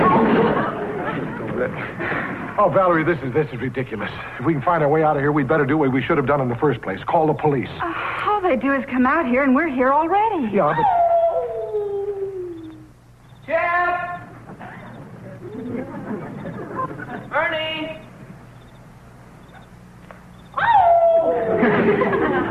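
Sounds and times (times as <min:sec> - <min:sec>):
laughter: 0:00.0 - 0:02.6, 0:14.5 - 0:17.4, 0:21.2 - 0:22.4
speech: 0:02.6 - 0:11.0, 0:20.6 - 0:22.4
dog howling: 0:10.6 - 0:12.9, 0:20.5 - 0:21.8.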